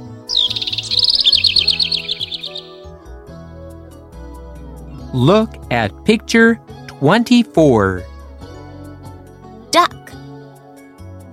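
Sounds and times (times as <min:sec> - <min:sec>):
soft low musical background: 0:00.0 - 0:11.3
small bird singing a rapid high-pitched trilling song: 0:00.3 - 0:02.9
speech: 0:05.1 - 0:08.1.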